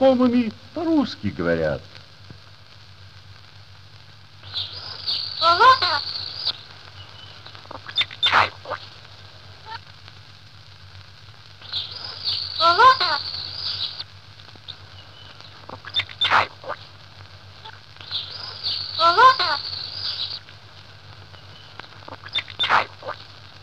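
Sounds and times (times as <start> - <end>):
speech: 0.0 - 2.0
steady low hum: 0.0 - 23.6
parrot squawking and chattering: 4.4 - 6.5, 7.7 - 8.9, 11.6 - 14.0, 15.7 - 16.8, 17.6 - 20.4, 22.1 - 23.3.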